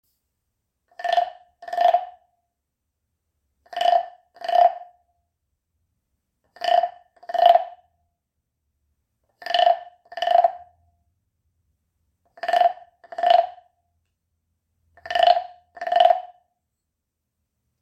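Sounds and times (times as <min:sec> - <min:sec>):
big frog sound healing instrument: 0:00.9 - 0:02.3, 0:03.6 - 0:05.0, 0:06.5 - 0:07.9, 0:09.4 - 0:10.8, 0:12.3 - 0:13.8, 0:15.0 - 0:16.5.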